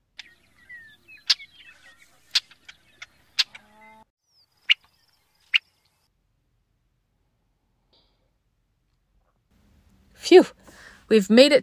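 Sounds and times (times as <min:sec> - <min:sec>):
Brewer's blackbird giving sharp clipped chip calls: 0:00.1 - 0:05.9
speech: 0:10.3 - 0:11.6.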